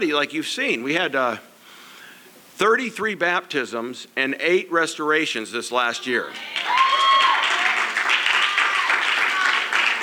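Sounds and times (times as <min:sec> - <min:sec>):
speech: 0:00.0 - 0:01.5, 0:02.6 - 0:06.9
cheers: 0:06.3 - 0:10.0
crowd applause: 0:06.3 - 0:10.0.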